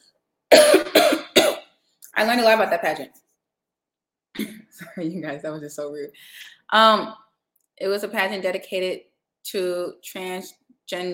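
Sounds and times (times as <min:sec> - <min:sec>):
speech: 0:00.5 - 0:00.9, 0:02.2 - 0:03.2, 0:04.4 - 0:07.2, 0:07.8 - 0:11.1
loud harsh coughs: 0:00.5 - 0:01.7.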